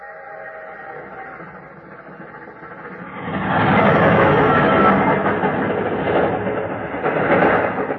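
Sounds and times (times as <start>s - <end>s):
train rushing past at level crossing: 0.0s - 7.9s.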